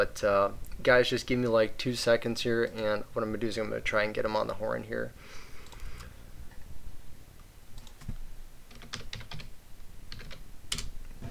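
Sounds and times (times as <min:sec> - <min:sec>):
speech: 0:00.0 - 0:05.4
typing on a brand-new eMachines computer keyboard: 0:07.8 - 0:09.5, 0:10.1 - 0:11.2.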